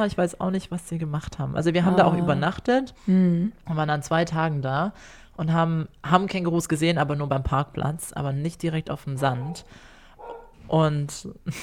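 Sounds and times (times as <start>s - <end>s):
speech: 0.0s - 9.9s, 10.6s - 11.6s
laughter: 1.9s - 2.5s
neighbours' dog barking through thin walls: 9.2s - 10.6s.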